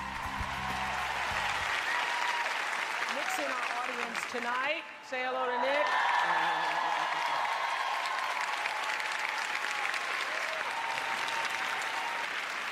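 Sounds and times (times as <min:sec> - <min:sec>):
faint cheers: 0:00.0 - 0:03.0, 0:05.6 - 0:12.7
large audience applauding in a standing ovation: 0:00.0 - 0:04.7, 0:05.8 - 0:12.7
speech: 0:03.2 - 0:07.0.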